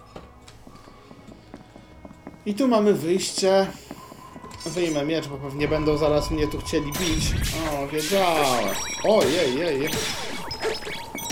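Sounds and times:
running footsteps of a video game character with sword sheathed: 0:00.0 - 0:06.9
steady game backdrop: 0:00.0 - 0:11.3
speech: 0:02.4 - 0:03.8, 0:04.6 - 0:10.8.

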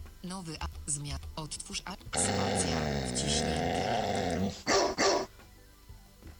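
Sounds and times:
speech: 0:00.2 - 0:04.9
dog growling: 0:02.1 - 0:05.3.

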